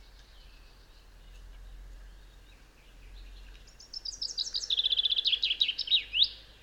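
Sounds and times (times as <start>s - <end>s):
Fringilla coelebs common chaffinch singing: 0.0s - 6.6s.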